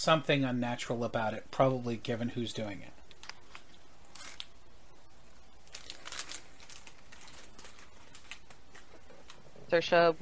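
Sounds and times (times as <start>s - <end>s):
speech: 0.0s - 3.0s, 9.7s - 10.1s
crumpled paper being unfolded: 3.1s - 4.6s, 5.3s - 9.7s.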